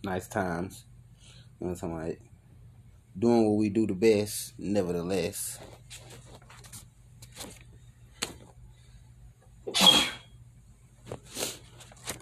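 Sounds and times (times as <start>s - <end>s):
speech: 0.0s - 0.9s, 1.6s - 2.3s, 3.2s - 6.1s
low steady hum: 0.0s - 12.2s
sneeze: 9.7s - 10.3s.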